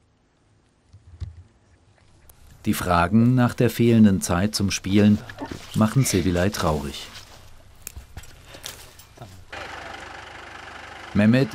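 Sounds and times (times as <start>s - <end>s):
speech: 2.6s - 7.2s, 11.2s - 11.5s
tractor engine rumbling: 4.4s - 11.5s.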